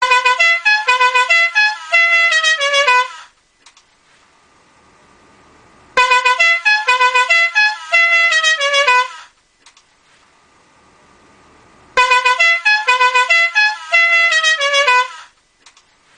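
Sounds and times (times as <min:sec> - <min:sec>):
horn ringtone melody: 0:00.0 - 0:03.3, 0:05.9 - 0:09.3, 0:11.9 - 0:15.3.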